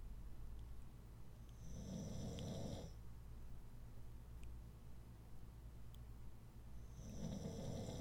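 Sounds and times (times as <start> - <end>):
low steady hum: 0.0 - 7.9
dog snoring: 1.6 - 3.0, 6.8 - 7.9.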